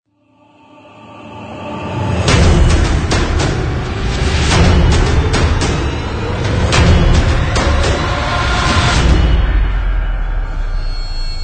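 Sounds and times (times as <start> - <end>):
orchestral instruments: 0.2 - 11.2
big drums: 2.3 - 11.4.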